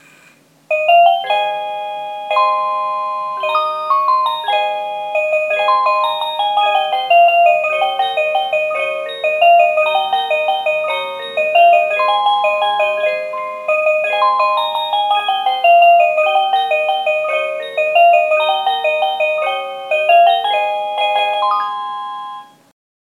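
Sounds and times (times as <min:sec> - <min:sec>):
cuckoo tune: 0:00.7 - 0:22.7.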